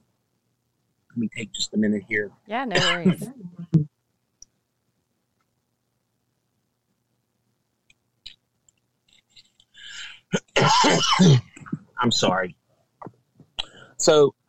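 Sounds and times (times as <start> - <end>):
speech: 1.2 - 3.9, 10.8 - 12.6, 14.0 - 14.4
loud harsh cough: 2.8 - 3.3, 10.3 - 12.4
person clearing throat: 2.8 - 3.3, 10.3 - 12.4
faint clicks: 7.8 - 9.8.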